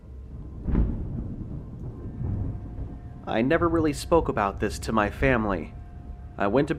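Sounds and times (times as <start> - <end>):
rain: 0.0 - 6.7
thunder rumbling during a storm: 0.0 - 6.7
speech: 3.3 - 5.8, 6.4 - 6.7.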